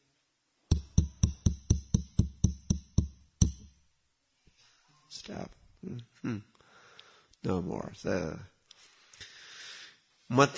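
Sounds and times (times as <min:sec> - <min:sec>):
knocking on a door: 0:00.7 - 0:03.7
speech: 0:05.2 - 0:06.6, 0:07.4 - 0:08.5, 0:10.3 - 0:10.5.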